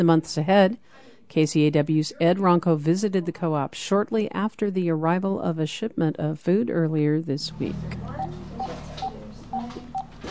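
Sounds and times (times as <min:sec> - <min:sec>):
speech: 0:00.0 - 0:08.3
touch-tone beeps of a woman dialling a telephone: 0:08.2 - 0:10.2.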